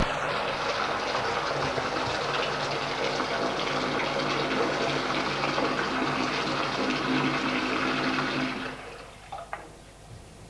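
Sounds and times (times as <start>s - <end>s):
shower running water: 0.0s - 9.4s.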